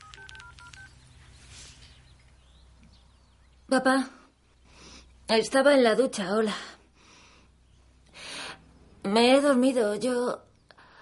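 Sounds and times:
mobile phone keypad tones as a number is dialed: 0.0 - 1.0
low steady hum: 0.0 - 10.9
speech: 3.7 - 4.2, 5.3 - 6.8, 9.0 - 10.5.

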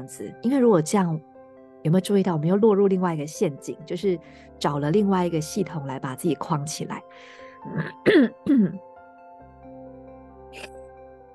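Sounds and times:
speech: 0.0 - 8.9, 10.5 - 10.7
person with a cold clearing the throat: 7.7 - 8.8, 10.6 - 10.8
person with a cold coughing: 7.7 - 8.8, 10.6 - 10.8.

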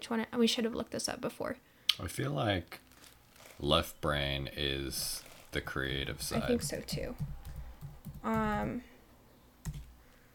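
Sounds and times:
speech: 0.0 - 2.9, 3.6 - 7.4, 8.2 - 8.9
person typing a search on a computer keyboard: 6.4 - 8.8, 9.6 - 10.0.

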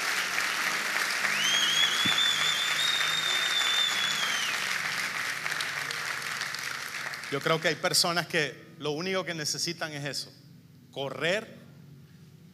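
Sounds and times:
congregation applauding loudly: 0.0 - 7.9
faint high whistle-like tone: 1.4 - 4.5
speech: 7.3 - 11.6.

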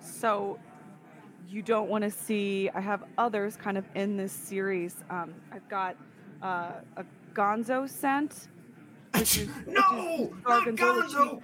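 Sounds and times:
speech: 0.2 - 0.7, 1.4 - 11.4
person sneezing: 9.2 - 9.7
strained voiced sounds: 9.2 - 11.4.

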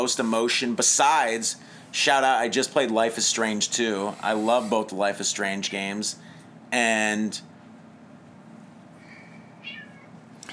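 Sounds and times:
speech: 0.0 - 7.5
low steady hum: 0.0 - 10.5
cat meowing while cats are being fed: 9.6 - 10.2.

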